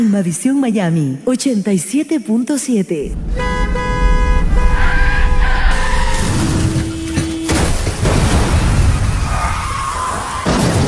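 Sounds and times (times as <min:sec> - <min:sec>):
speech: 0:00.2 - 0:03.6
car horn blaring: 0:03.1 - 0:08.1
car tires screeching: 0:03.1 - 0:10.7
car accident crashing impact: 0:03.2 - 0:09.7, 0:10.4 - 0:10.8
rumbling scattering noise after a car crash: 0:04.0 - 0:10.8.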